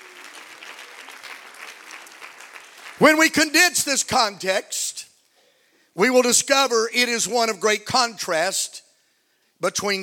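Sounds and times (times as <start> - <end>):
audience clapping hands in a room: 0.0 - 3.1
speech: 3.0 - 5.0, 6.0 - 8.8, 9.6 - 10.0.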